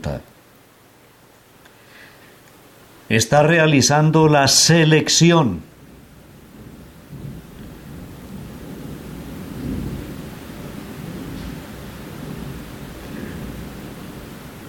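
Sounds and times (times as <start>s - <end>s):
speech: 0.0s - 0.3s, 3.1s - 5.7s
long deep rumble of thunder: 4.2s - 14.6s.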